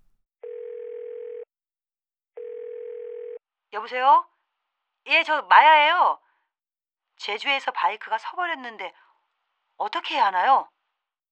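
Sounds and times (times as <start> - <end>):
telephone ringback tone while calling a service centre: 0.4 - 1.5, 2.4 - 3.4
speech: 3.7 - 4.3, 5.0 - 6.2, 7.2 - 9.0, 9.8 - 10.7.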